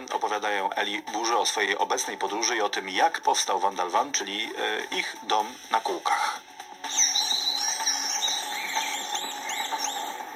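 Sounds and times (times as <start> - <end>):
speech: 0.3 - 7.1
many birds singing in the early morning beside a lake: 6.8 - 10.3.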